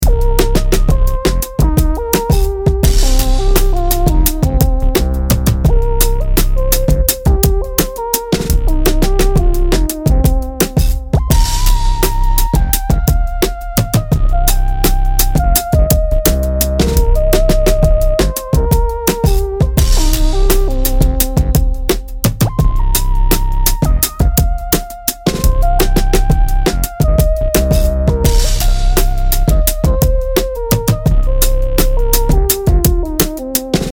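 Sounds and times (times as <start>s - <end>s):
minor pentatonic melody: 0.0s - 33.9s.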